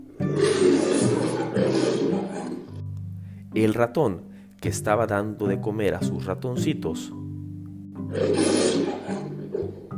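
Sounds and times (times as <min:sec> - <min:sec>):
lion roaring: 0:00.2 - 0:02.8, 0:08.1 - 0:09.9
speech: 0:03.6 - 0:07.2, 0:08.1 - 0:09.3.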